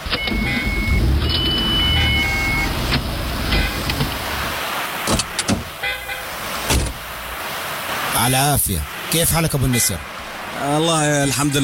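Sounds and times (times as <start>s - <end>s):
car engine idling and creeping along: 0.0s - 7.7s
speech: 8.2s - 11.6s.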